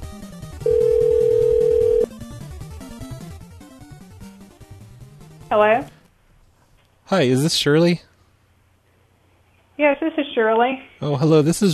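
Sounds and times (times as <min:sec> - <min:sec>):
busy musical background: 0:00.0 - 0:06.2
telephone busy signal: 0:00.6 - 0:02.2
speech: 0:05.5 - 0:06.0, 0:07.1 - 0:08.1, 0:09.8 - 0:11.7.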